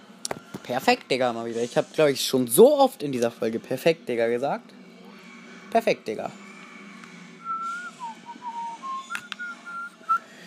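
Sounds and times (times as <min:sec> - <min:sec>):
speech: 0:00.7 - 0:04.8, 0:05.7 - 0:06.4
person whistling a melody: 0:07.4 - 0:10.3.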